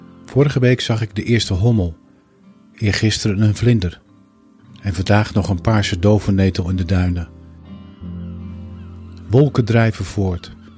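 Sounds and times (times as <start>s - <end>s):
speech: 0.4s - 2.0s, 2.8s - 4.0s, 4.8s - 7.4s, 9.3s - 10.6s
two birds calling with nasal honking tone: 8.0s - 10.7s.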